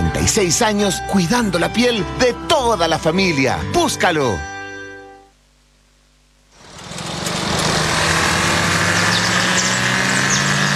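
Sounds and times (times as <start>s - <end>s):
speech: 0.2s - 4.5s
Audi Q5 2.0 TFSI mild-hybrid car engine roar: 6.6s - 10.7s.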